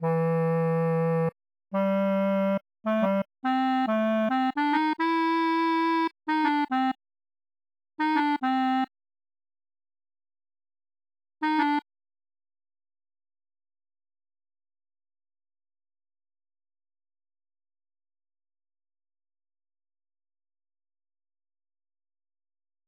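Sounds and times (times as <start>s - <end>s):
clarinet playing: 0.0s - 7.0s, 8.0s - 8.9s, 11.4s - 11.8s.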